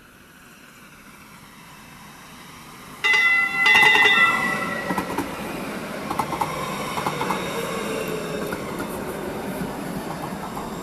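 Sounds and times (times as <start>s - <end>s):
light rail train rolling into a station: 0.0s - 10.8s
light rail train high wheel squeal: 3.0s - 10.8s.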